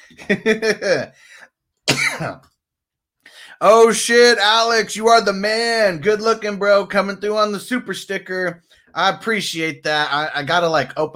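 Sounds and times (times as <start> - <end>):
laughter: 0.1 - 1.1
speech: 0.1 - 2.5, 3.6 - 11.1
person coughing and clearing throat: 1.9 - 2.4.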